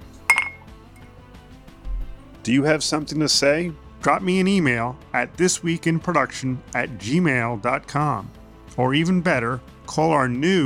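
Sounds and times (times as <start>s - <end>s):
glasses clinking in a toast: 0.0s - 1.2s
speech: 2.4s - 10.6s.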